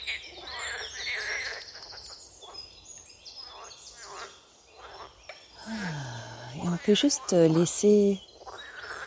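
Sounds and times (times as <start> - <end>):
birds chirping and trilling by a pond: 0.0 - 9.0
frogs croaking by a pond: 0.0 - 9.0
speech: 6.8 - 8.3.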